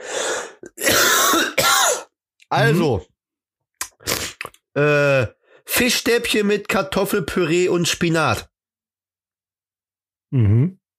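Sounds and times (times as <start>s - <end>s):
person coughing: 0.6s - 2.1s
person clearing throat: 0.7s - 2.1s
speech: 2.5s - 3.1s, 4.8s - 8.5s, 10.3s - 10.8s.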